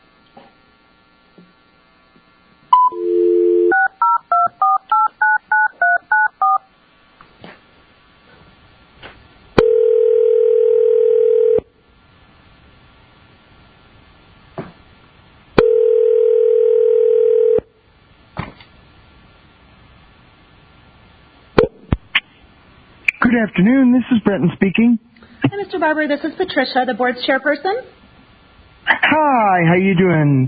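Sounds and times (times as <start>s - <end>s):
telephone dial tone: 2.8s - 6.6s, 9.6s - 11.6s, 15.6s - 17.6s
speech: 23.4s - 28.0s, 29.0s - 30.4s.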